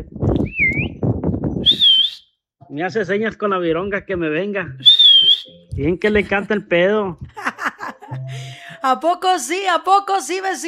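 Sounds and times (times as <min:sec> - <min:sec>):
person whistling two short tones: 0:00.4 - 0:01.0, 0:01.6 - 0:02.3, 0:04.8 - 0:05.9
speech: 0:02.8 - 0:07.5, 0:08.3 - 0:10.6
laughter: 0:06.0 - 0:08.8.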